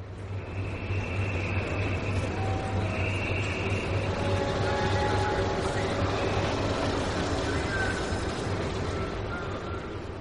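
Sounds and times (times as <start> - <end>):
car-carrying train travelling through a tunnel toward Calais, France: 0.0 - 10.1
faint high whines: 0.2 - 10.1.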